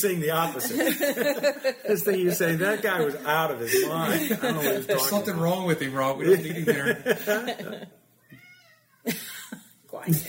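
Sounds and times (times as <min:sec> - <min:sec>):
speech: 0:00.0 - 0:08.0, 0:09.0 - 0:09.3, 0:10.0 - 0:10.2
laughter: 0:00.2 - 0:08.0
cat meowing: 0:08.2 - 0:09.1.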